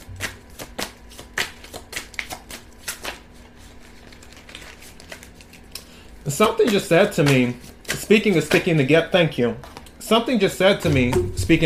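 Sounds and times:
shuffling a deck of playing cards that stick together: 0.0s - 8.9s
speech: 6.3s - 11.6s.

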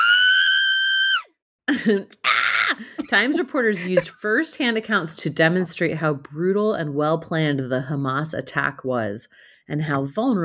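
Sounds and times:
loud high-pitched primal scream: 0.0s - 1.3s
speech: 1.8s - 10.4s.

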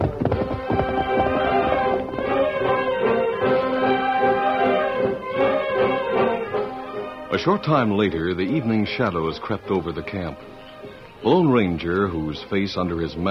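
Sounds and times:
horse hooves clip-clopping at a brisk pace: 0.0s - 3.0s
horse whinnying: 0.0s - 7.3s
speech: 7.4s - 10.6s, 11.2s - 13.2s.

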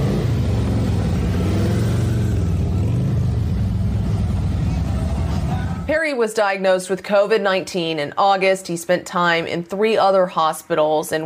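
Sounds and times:
motorcycle engines revving and idling outside a hospital: 0.0s - 5.9s
speech: 6.0s - 11.2s.

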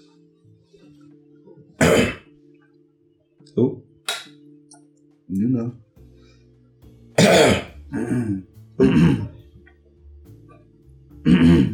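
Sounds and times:
throat clearing: 1.8s - 2.3s, 7.2s - 9.4s, 11.3s - 11.7s
speech: 3.5s - 3.9s, 5.3s - 5.8s.

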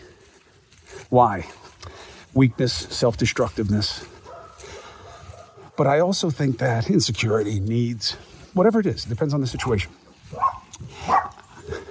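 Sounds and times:
speech: 1.1s - 1.6s, 2.4s - 4.1s, 5.8s - 11.2s
dog barking in short yips: 4.2s - 5.8s, 10.3s - 11.4s.

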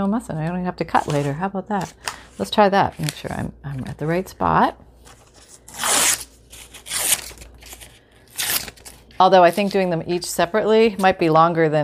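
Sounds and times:
speech: 0.0s - 4.8s, 9.2s - 11.8s
paper page being torn to size by hand: 5.2s - 9.7s.

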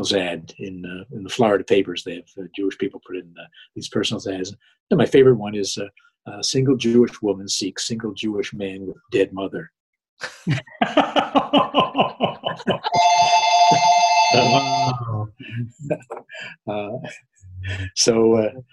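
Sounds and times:
speech: 0.0s - 18.7s
rhythmic laughter: 10.2s - 18.0s
phone ringing with a steady electronic tone: 12.9s - 15.0s.

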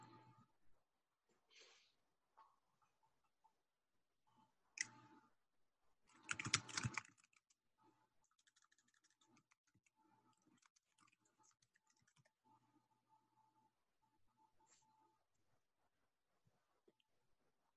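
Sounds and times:
computer keyboard typing over a video call: 6.1s - 7.6s, 8.2s - 12.4s.

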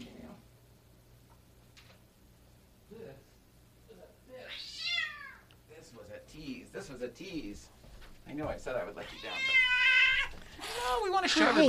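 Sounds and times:
low steady hum: 0.0s - 11.6s
female cat meowing: 4.5s - 5.5s, 9.0s - 10.4s
speech: 7.0s - 9.8s, 10.8s - 11.6s.

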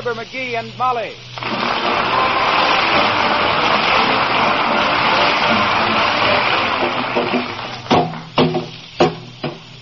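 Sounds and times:
speech: 0.0s - 3.1s
broad steady hiss: 0.0s - 9.8s
hammer knocking dents out of an old car's body in a backyard: 7.9s - 9.6s.

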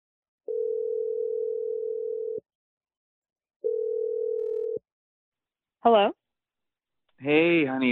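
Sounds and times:
phone line dial tone: 0.5s - 2.4s, 3.6s - 4.8s
speech: 5.8s - 6.2s, 7.2s - 7.8s.

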